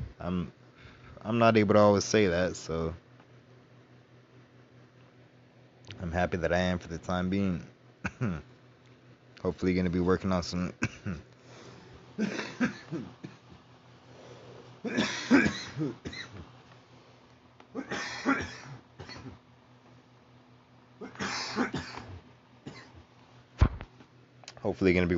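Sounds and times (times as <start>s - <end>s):
speech: 0.2s - 0.6s, 1.2s - 3.0s, 6.0s - 8.5s, 9.4s - 11.3s, 12.2s - 13.2s, 14.8s - 16.4s, 17.8s - 18.8s, 21.4s - 22.0s, 24.6s - 25.1s
person coughing after smoking a joint: 8.0s - 8.4s, 10.8s - 11.3s, 12.2s - 13.5s, 14.8s - 16.4s, 17.8s - 19.4s, 21.0s - 23.0s
throat clearing: 8.0s - 8.5s, 10.8s - 11.3s, 14.8s - 16.5s, 17.8s - 19.4s, 21.0s - 23.0s.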